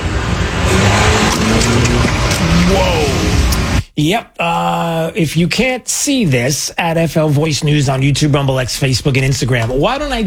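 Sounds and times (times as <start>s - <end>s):
car engine rumbling and revving as it pulls up: 0.0s - 3.9s
road noise: 0.0s - 3.9s
speech: 4.0s - 10.2s.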